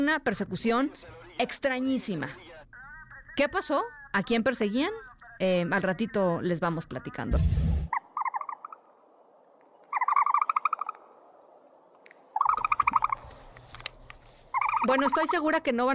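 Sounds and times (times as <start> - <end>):
speech: 0.0 - 2.8, 3.4 - 7.6, 14.8 - 15.9
ostrich calling: 7.8 - 9.1, 9.7 - 13.6, 14.3 - 15.6.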